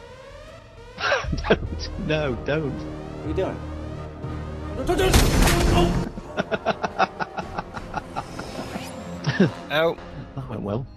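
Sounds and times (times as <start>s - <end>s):
laughter: 1.0s - 2.0s, 6.2s - 9.6s
speech: 1.5s - 7.0s, 9.4s - 10.9s
gunshot: 5.1s - 5.9s.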